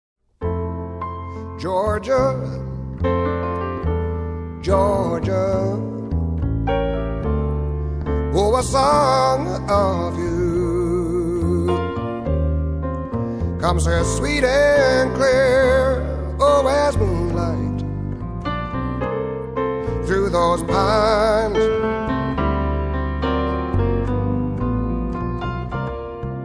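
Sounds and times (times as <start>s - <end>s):
cocktail piano: 0.4s - 26.4s.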